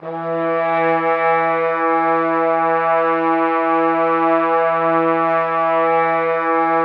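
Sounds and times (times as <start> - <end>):
horn intro: 0.0 - 6.8.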